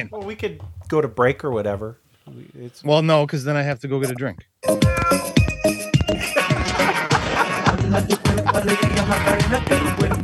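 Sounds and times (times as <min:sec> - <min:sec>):
speech: 0:00.0 - 0:05.3, 0:07.9 - 0:10.2
cat meowing: 0:04.7 - 0:05.5
laughter: 0:06.1 - 0:09.1.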